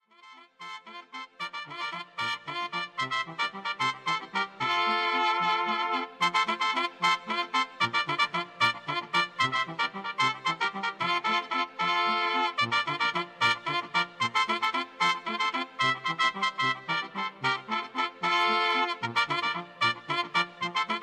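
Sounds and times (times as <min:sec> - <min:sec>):
chilena mariachi music: 0:00.3 - 0:21.0.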